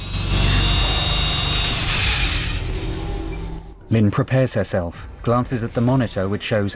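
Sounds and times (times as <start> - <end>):
powered drill boring into a skull: 0.0 - 3.6
speech: 3.9 - 6.7.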